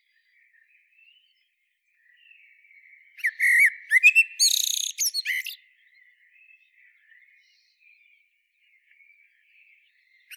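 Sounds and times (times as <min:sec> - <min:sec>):
common blackbird Turdus merula singing: 0:03.2 - 0:05.6.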